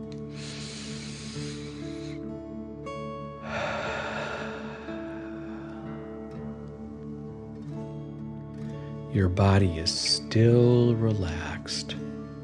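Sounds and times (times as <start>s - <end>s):
soft sustained music: 0.0s - 12.4s
slow deep breath drawn in through the nose: 0.2s - 2.3s, 3.4s - 6.8s
longer louder whooshing exhale out through the mouth: 0.3s - 2.2s, 3.4s - 6.7s
speech: 9.2s - 12.0s.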